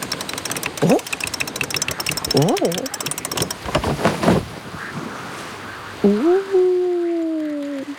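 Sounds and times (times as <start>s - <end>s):
faint rattling flutter: 0.0s - 4.6s
waves lapping around a sailing boat: 0.0s - 7.9s
wind filling a sailboat's sail: 0.0s - 7.9s
speech: 0.8s - 1.1s, 2.4s - 3.0s.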